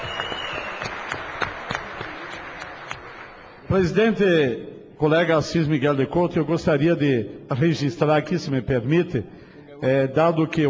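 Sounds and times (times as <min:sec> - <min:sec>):
audience at a public hearing applauding: 0:00.0 - 0:03.7
speech: 0:03.7 - 0:10.6.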